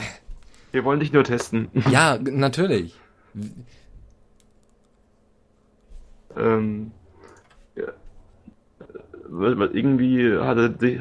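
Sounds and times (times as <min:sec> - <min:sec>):
speech: 0:00.7 - 0:03.8, 0:06.3 - 0:07.0, 0:07.8 - 0:08.0, 0:09.3 - 0:10.9
typing a chat message on a computer keyboard: 0:04.4 - 0:05.0.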